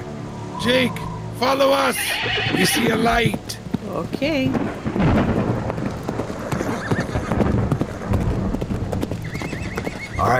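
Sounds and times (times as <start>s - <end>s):
storm rain: 0.0s - 10.3s
storm wind: 0.0s - 10.3s
speech: 0.6s - 5.4s
horse whinnying: 2.0s - 3.1s, 6.5s - 7.4s, 9.2s - 10.3s
horses galloping through a storm: 2.2s - 10.3s.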